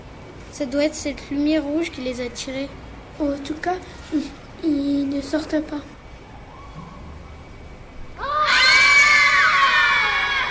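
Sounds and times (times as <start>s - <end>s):
speech: 0.6s - 5.9s
several people screaming inside a house: 8.2s - 10.4s.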